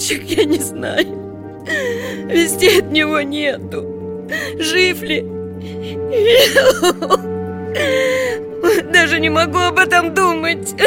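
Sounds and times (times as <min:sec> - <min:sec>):
woman weeping: 0:00.0 - 0:03.1, 0:04.2 - 0:09.3
speech: 0:00.1 - 0:10.8.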